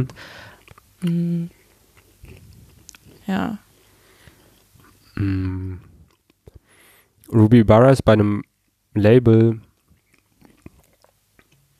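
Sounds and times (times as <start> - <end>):
speech: 0.0 - 0.4, 1.0 - 1.6, 3.3 - 3.7, 5.2 - 5.9, 7.3 - 9.7
person chewing food: 0.0 - 7.3, 9.6 - 11.7.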